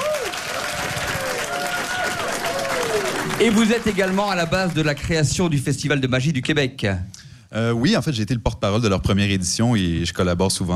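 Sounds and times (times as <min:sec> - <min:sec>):
audience applauding two guests at a live children's show: 0:00.0 - 0:05.3
speech: 0:03.4 - 0:10.7.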